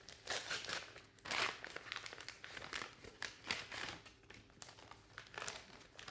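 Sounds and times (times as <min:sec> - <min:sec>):
envelope handled and torn open: 0:00.0 - 0:06.0
paper crinkling and rustling as mail is opened: 0:01.3 - 0:06.0.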